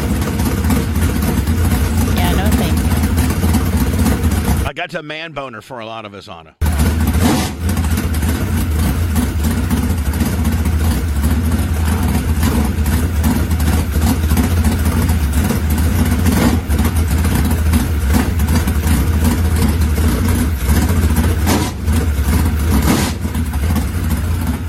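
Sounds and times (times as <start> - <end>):
726 horsepower car engine with four-barrel carburetor revving: 0.0 - 4.7, 6.6 - 24.6
speech: 4.8 - 6.7.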